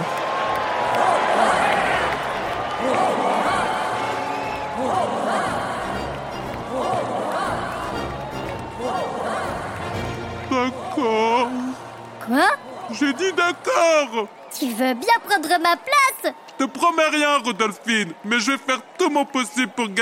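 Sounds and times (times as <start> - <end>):
dense steady roar of many people: 0.7 - 11.9
large crowd chanting a name in unison: 0.9 - 11.7
speech: 13.2 - 20.0.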